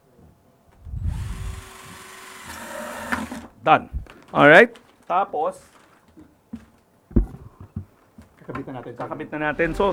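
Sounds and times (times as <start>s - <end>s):
power drill whirring: 1.0s - 3.5s
speech: 3.6s - 5.8s, 8.5s - 9.9s.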